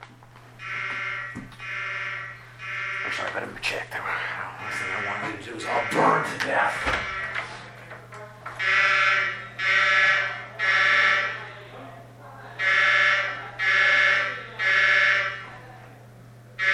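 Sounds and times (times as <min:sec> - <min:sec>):
low electrical hum: 0:00.0 - 0:16.7
fire alarm harsh buzzing blasts: 0:00.5 - 0:03.5, 0:04.6 - 0:07.6, 0:08.5 - 0:11.6, 0:12.6 - 0:15.6, 0:16.6 - 0:16.7
speech: 0:03.1 - 0:07.2.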